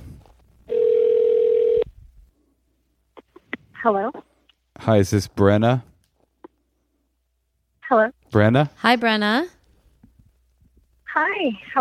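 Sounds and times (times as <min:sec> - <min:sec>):
telephone dial tone while placing a call: 0:00.7 - 0:01.9
speech: 0:03.8 - 0:05.9, 0:07.9 - 0:09.6, 0:11.4 - 0:11.8.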